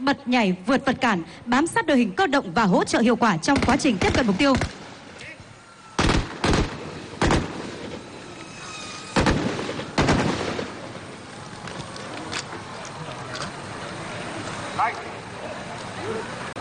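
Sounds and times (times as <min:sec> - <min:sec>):
speech: 0:00.0 - 0:04.8
gunfire during military shooting drill: 0:03.5 - 0:04.9, 0:06.0 - 0:08.1, 0:09.1 - 0:11.1.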